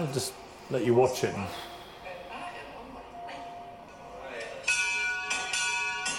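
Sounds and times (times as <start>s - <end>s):
speech: 0.0s - 1.7s
hospital bell rung to mark treatment end: 4.6s - 6.1s.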